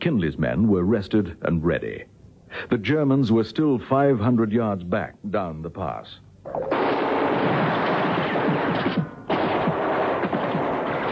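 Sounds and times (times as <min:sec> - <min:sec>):
speech: 0:00.0 - 0:07.0
heavy rapid gunfire in a wartime battle drama near a mountain pass: 0:06.7 - 0:11.1.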